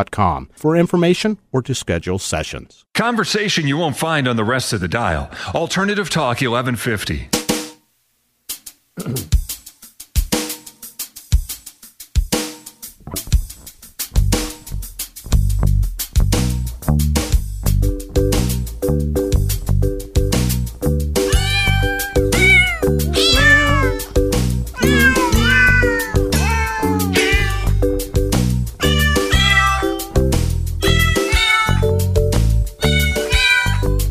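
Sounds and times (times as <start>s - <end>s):
speech: 0.0s - 7.4s, 9.0s - 9.4s
steady loud musical backing with a regular beat: 8.5s - 34.0s
sampled cat meows arranged into a bouncy melody: 21.2s - 28.0s, 28.8s - 32.1s, 32.8s - 34.0s.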